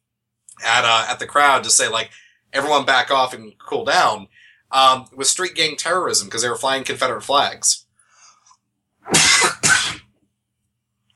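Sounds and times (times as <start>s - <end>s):
speech: 0.6s - 7.8s, 9.0s - 9.7s
person coughing harshly: 9.1s - 10.1s.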